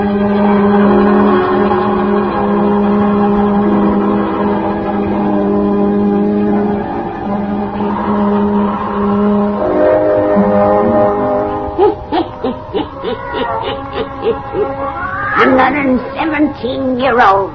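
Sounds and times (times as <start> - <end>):
low droning background: 0.0 - 17.5
laughter: 11.8 - 14.9
black cat meowing: 12.6 - 15.8.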